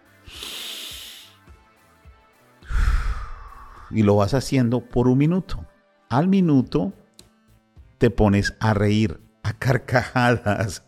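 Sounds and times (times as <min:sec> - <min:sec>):
deep inhale and exhale through nose during a breathing exercise: 0:00.1 - 0:01.5, 0:02.6 - 0:03.9
speech: 0:03.9 - 0:07.0, 0:08.0 - 0:10.8.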